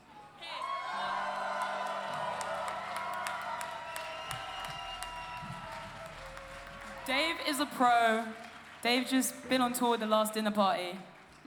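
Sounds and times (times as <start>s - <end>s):
large crowd roaring and cheering: 0.3s - 8.2s
shouts and whoops: 0.4s - 7.6s
speech: 7.1s - 11.4s.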